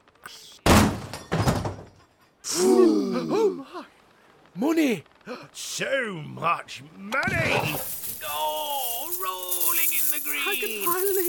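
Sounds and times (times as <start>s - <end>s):
speech: 0.3s - 0.5s, 2.6s - 4.0s, 4.6s - 9.6s
door on a ship being broken down: 0.7s - 1.9s
hiss: 7.7s - 11.2s.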